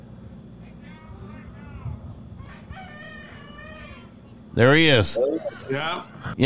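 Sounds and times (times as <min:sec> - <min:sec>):
rooster crowing: 0:02.6 - 0:04.1
speech: 0:04.6 - 0:06.4.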